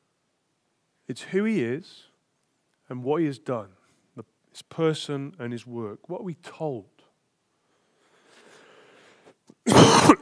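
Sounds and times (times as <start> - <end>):
speech: 1.1 - 2.1, 2.9 - 6.9
harsh throaty cough: 9.6 - 10.2.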